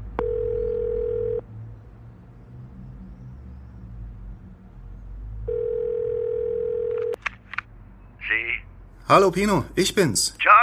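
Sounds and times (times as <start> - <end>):
telephone ringback tone as a call is placed: 0.2 - 1.5, 5.5 - 7.2
speech: 9.1 - 10.5.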